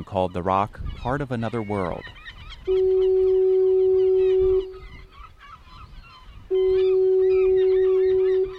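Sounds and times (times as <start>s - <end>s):
speech: 0.0s - 3.2s
seabirds chattering: 0.0s - 8.5s
lighthouse foghorn blowing: 2.7s - 4.9s, 6.5s - 8.5s.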